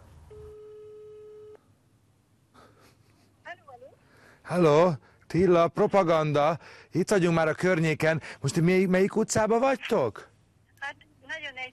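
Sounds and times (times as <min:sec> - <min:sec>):
telephone call tone after dialing a number: 0:00.3 - 0:01.6
speech: 0:04.5 - 0:10.3.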